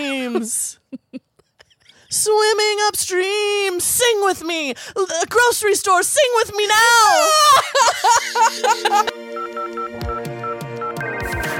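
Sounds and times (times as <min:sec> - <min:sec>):
speech: 0:00.3 - 0:01.3, 0:02.1 - 0:09.2
laughter: 0:07.2 - 0:09.1
telephone dialing tones of short electronic beeps: 0:09.4 - 0:11.5.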